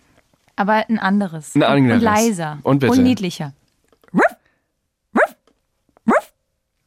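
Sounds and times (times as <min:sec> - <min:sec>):
speech: 0:00.6 - 0:04.3
woman imitating a dog barking with short rising yips: 0:02.0 - 0:02.3, 0:02.9 - 0:03.2, 0:04.1 - 0:04.4, 0:05.2 - 0:05.4, 0:06.1 - 0:06.3.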